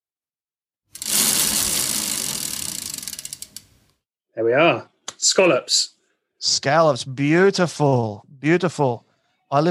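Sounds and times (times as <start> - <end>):
prize wheel spinning and clicking: 1.0 - 3.7
speech: 4.4 - 9.7.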